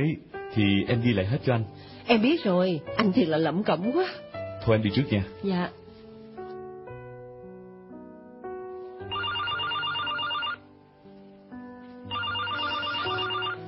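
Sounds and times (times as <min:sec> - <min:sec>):
speech: 0:00.0 - 0:05.8
home telephone ringing with rapid trilling bells: 0:09.1 - 0:10.6, 0:12.1 - 0:13.6.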